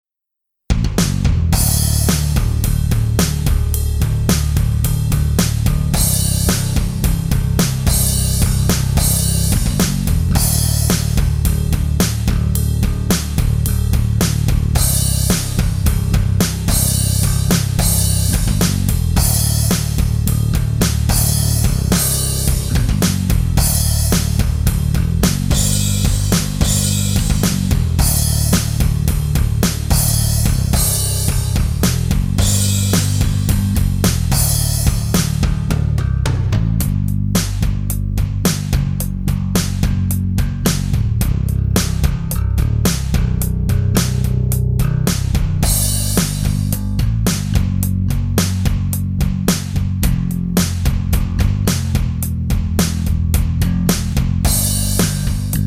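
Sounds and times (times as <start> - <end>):
bass guitar: 0.7 - 55.6.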